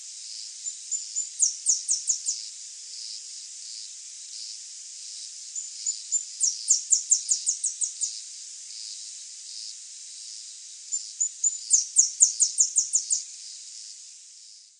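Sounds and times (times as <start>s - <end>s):
steady hiss: 0.0s - 14.7s
Saffron-billed sparrow Arremon flavirostris song: 0.3s - 3.2s, 5.2s - 9.7s, 10.4s - 14.7s.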